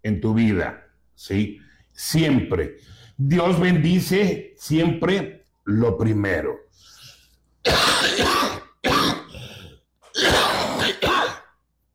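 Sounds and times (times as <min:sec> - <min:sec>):
speech: 0:00.0 - 0:06.9, 0:07.6 - 0:09.1
person clearing throat: 0:07.7 - 0:11.6
person with a cough coughing: 0:07.7 - 0:11.6.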